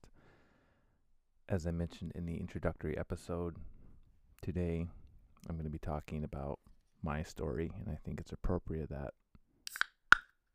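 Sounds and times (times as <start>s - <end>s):
speech: 1.5s - 3.8s, 4.4s - 9.8s
beer can being cracked open: 9.7s - 10.0s.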